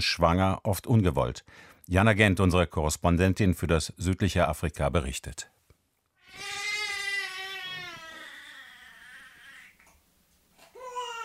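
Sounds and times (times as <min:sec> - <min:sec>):
speech: 0:00.0 - 0:05.6
young infant crying: 0:06.2 - 0:09.8, 0:10.7 - 0:11.2.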